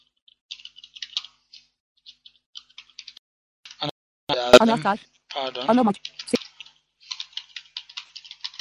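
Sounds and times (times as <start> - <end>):
typing on a computer keyboard: 0.5 - 3.2, 6.0 - 8.5
person speaking: 3.8 - 6.4.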